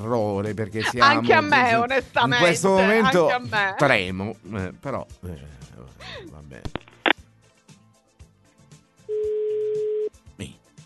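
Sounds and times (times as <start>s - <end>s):
speech: 0.0s - 6.9s
ringback tone from an outgoing phone call: 9.1s - 10.1s.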